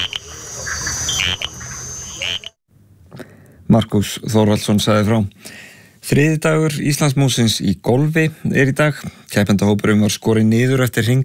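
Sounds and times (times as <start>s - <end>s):
dense steady insect-like drone: 0.0s - 2.6s
small frogs calling at night from coffee bushes: 0.0s - 2.6s
speech: 3.7s - 11.2s.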